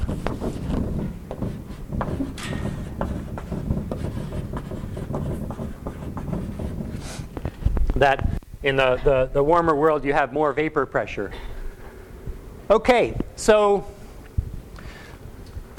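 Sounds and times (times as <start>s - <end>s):
chalk or marker scratching and tapping on a board: 0.0s - 7.6s
speech: 8.0s - 11.5s, 12.7s - 14.0s.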